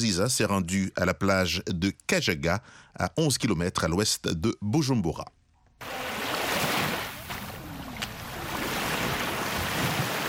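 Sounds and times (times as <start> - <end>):
speech: 0.0 - 6.0
small lake waves washing onto a beach: 5.8 - 10.2.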